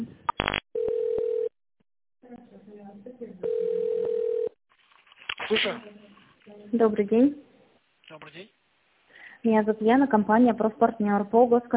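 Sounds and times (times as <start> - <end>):
telephone ringback tone while a business call is transferred: 0.8 - 1.5, 3.4 - 4.6
short burst of rapid telephone tones: 3.5 - 4.5
speech: 5.5 - 6.0, 6.7 - 7.4, 9.4 - 11.7.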